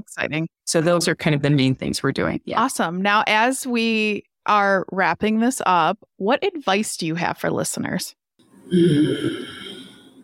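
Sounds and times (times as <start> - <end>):
speech: 0.0 - 9.7
deep breath: 8.7 - 10.2.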